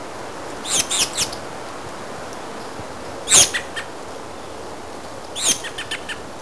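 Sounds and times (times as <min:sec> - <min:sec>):
steady hiss: 0:00.0 - 0:06.3
bird chirps: 0:00.6 - 0:01.4, 0:05.4 - 0:06.3.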